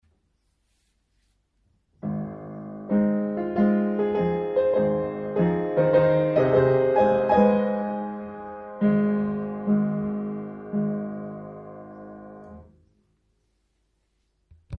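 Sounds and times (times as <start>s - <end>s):
solo piano: 2.0s - 12.9s.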